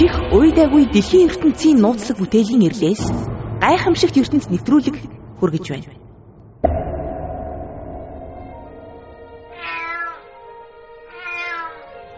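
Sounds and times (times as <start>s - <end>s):
speech: 0.6s - 6.0s
cat meowing: 9.5s - 10.3s, 11.0s - 11.9s.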